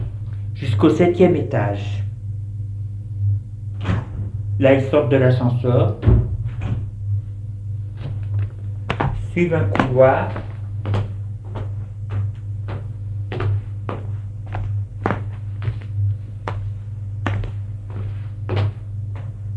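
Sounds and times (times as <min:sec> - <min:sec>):
low constant hum: 0:00.0 - 0:19.5
speech: 0:00.6 - 0:02.0, 0:04.6 - 0:06.2, 0:09.4 - 0:10.5
footsteps at a walking pace: 0:07.9 - 0:19.5.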